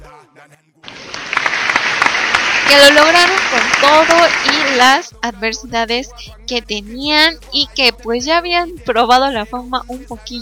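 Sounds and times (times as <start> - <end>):
applause for a young male group: 0.8 - 5.1
speech: 2.7 - 10.4.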